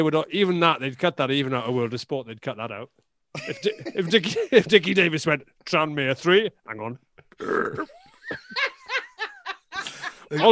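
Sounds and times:
speech: 0.0s - 8.7s, 10.3s - 10.5s
rhythmic bursts of laughter: 3.3s - 4.7s, 7.8s - 10.5s
loud low rasping burp: 7.3s - 8.0s.

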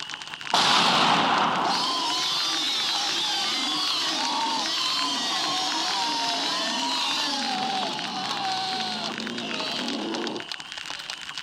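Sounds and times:
flash grenade detonating outside in a driveway: 0.5s - 2.9s
people crying out: 1.6s - 10.5s.

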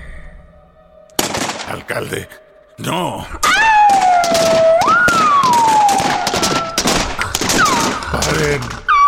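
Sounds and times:
gunfire from many weapons: 1.2s - 1.8s, 3.5s - 8.9s
speech: 1.7s - 5.0s, 8.3s - 8.8s.

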